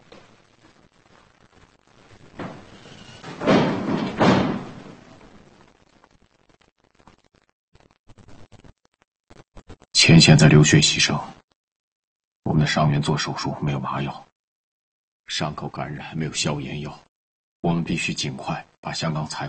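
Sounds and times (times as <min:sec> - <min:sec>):
rustling: 0:00.0 - 0:05.8
door being shut: 0:02.3 - 0:05.3
soft knocks: 0:02.4 - 0:05.0
speech: 0:10.1 - 0:11.4, 0:12.7 - 0:14.3, 0:15.3 - 0:19.4.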